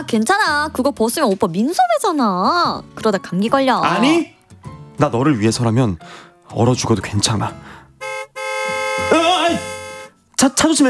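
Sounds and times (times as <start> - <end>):
speech: 0.0 - 4.4, 5.0 - 7.8, 9.1 - 9.6, 10.4 - 10.8
car horn honking: 8.0 - 10.2.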